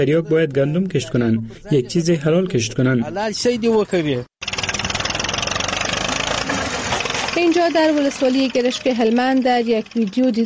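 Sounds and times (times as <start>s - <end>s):
speech: 0.0s - 4.4s, 7.4s - 10.4s
tractor engine running: 4.4s - 10.4s.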